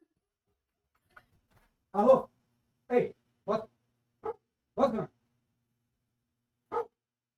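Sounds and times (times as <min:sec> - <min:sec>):
speech: 0:02.0 - 0:02.3
dog barking: 0:04.2 - 0:04.4, 0:06.7 - 0:07.0.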